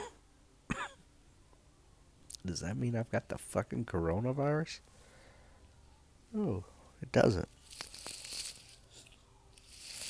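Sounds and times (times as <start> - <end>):
person coughing with throat clearing: 0.0 - 1.0
speech: 2.4 - 5.0, 6.3 - 7.6.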